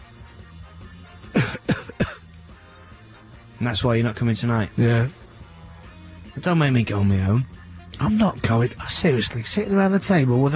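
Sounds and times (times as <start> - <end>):
harsh throaty coughs from a sick person: 1.3 - 2.4
speech: 3.6 - 5.2, 6.4 - 10.5.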